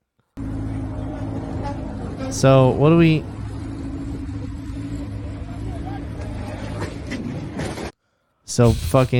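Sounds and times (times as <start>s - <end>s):
engine roar of cars speeding along a highway in a chase: 0.4s - 7.9s
voices: 0.5s - 7.2s
speech: 2.3s - 3.3s, 8.6s - 9.1s.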